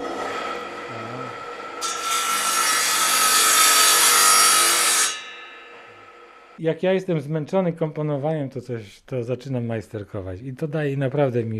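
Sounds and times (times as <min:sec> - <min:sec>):
saw cutting through wood during home tinkering: 0:00.0 - 0:06.6
speech: 0:06.6 - 0:11.5.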